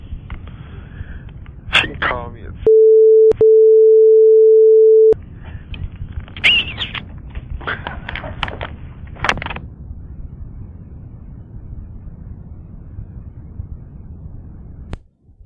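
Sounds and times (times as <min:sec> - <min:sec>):
speech: 0:02.3 - 0:03.4
telephone dial tone on an answering machine tape: 0:02.7 - 0:05.2.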